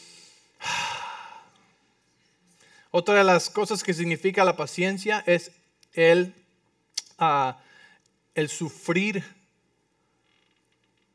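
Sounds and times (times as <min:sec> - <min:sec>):
deep breath taken during a sermon: 0:00.0 - 0:01.7, 0:07.6 - 0:08.1
speech: 0:02.9 - 0:06.4, 0:07.2 - 0:07.7, 0:08.4 - 0:09.4.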